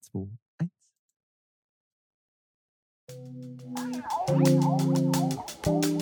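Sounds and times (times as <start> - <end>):
speech: 0.0 - 0.4, 3.2 - 5.9
sustained bass and synth tones: 3.2 - 5.9
brisk drum hits with doubled strokes: 3.7 - 5.9.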